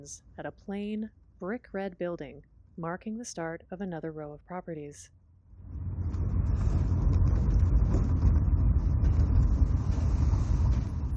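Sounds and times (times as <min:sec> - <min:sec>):
speech: 0:00.0 - 0:05.8
low car engine and road rumble: 0:05.5 - 0:11.1
car slowing over a series of speed bumps: 0:05.6 - 0:11.1.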